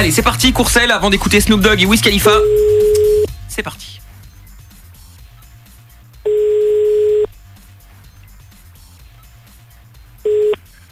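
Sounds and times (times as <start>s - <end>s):
speech: 0.0s - 2.9s, 3.6s - 4.1s
ringback tone of a radio show's call to a listener: 2.4s - 3.3s, 6.3s - 7.3s, 10.3s - 10.6s.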